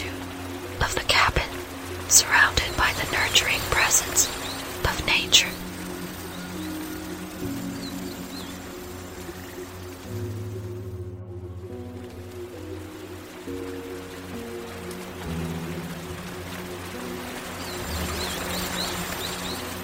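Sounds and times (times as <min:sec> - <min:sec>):
faint bird chirp: 0:00.0 - 0:10.1, 0:16.8 - 0:19.8
rain falling on a cabin roof: 0:00.0 - 0:19.8
speech: 0:00.8 - 0:01.1, 0:02.1 - 0:05.7.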